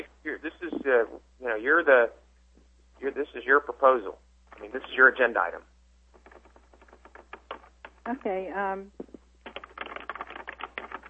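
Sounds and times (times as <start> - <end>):
low hum: 0.0 - 11.0
speech: 3.1 - 5.7, 8.1 - 9.0
rapid irregular typing on a computer keyboard with plastic keys: 6.2 - 8.0, 9.4 - 11.0.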